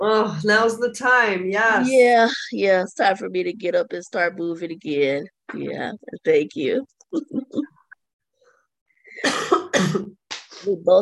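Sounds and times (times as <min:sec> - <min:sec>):
speech: 0:00.0 - 0:07.7, 0:09.2 - 0:11.0
person coughing loudly and harshly: 0:09.1 - 0:10.2.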